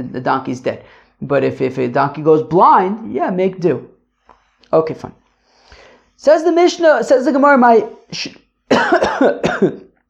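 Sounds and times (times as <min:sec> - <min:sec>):
speech: 0:00.0 - 0:03.9, 0:04.6 - 0:05.2, 0:06.2 - 0:09.9
person coughing harsh chesty coughs: 0:08.7 - 0:10.0.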